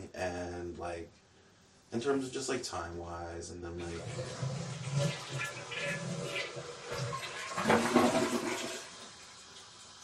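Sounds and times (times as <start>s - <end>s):
speech: 1.9s - 8.0s
toilet flushing: 3.8s - 10.0s.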